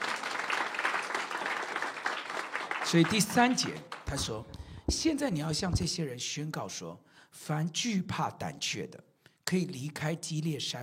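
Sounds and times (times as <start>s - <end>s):
church congregation clapping hands during a worship service: 0.0s - 4.7s
speech: 2.9s - 10.8s.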